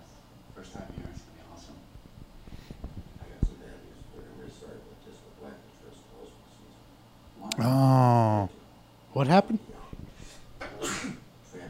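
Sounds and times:
person sneezing: 0:07.5 - 0:08.5, 0:10.8 - 0:11.2
speech: 0:09.2 - 0:09.7.

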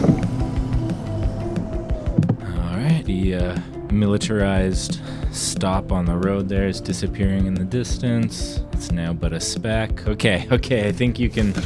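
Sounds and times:
car engine droning as the car drives off from a militarized stop: 0:00.0 - 0:05.4
regular ticking rhythm: 0:00.0 - 0:10.0
speech: 0:03.1 - 0:11.6.

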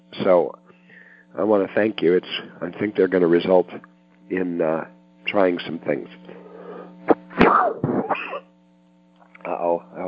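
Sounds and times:
faint steady hum: 0:00.0 - 0:10.0
speech: 0:00.2 - 0:00.6, 0:01.3 - 0:06.4, 0:07.4 - 0:08.4, 0:09.4 - 0:10.0
person coughing: 0:07.3 - 0:08.5.

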